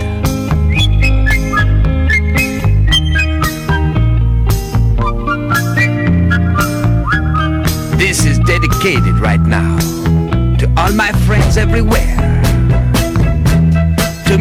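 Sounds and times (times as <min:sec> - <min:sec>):
loud full band playing: 0:00.0 - 0:14.3
people whistling a high sliding melody: 0:00.5 - 0:04.0, 0:05.0 - 0:09.6
speech: 0:11.6 - 0:12.3.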